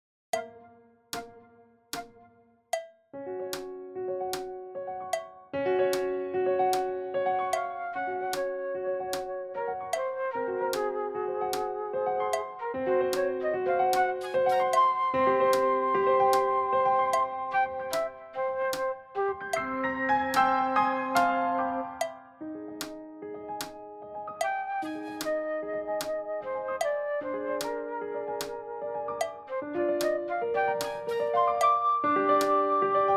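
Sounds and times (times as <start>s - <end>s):
fast piano: 3.2s - 33.1s
fast flute: 9.6s - 19.8s, 24.5s - 33.1s.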